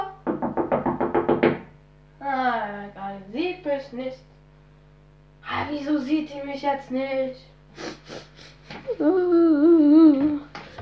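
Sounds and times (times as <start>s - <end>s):
knocking on a door or wooden surface: 0.2s - 1.7s
speech: 3.7s - 4.3s, 5.7s - 8.2s, 8.9s - 10.3s.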